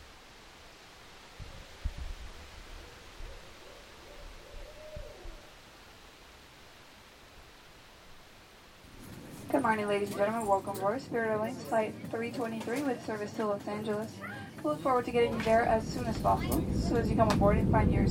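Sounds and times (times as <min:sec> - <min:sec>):
steady outdoor wind hiss: 0:00.0 - 0:11.4, 0:15.1 - 0:18.1
faint drawn-out owl hoot: 0:02.8 - 0:05.7
speech: 0:09.6 - 0:18.1.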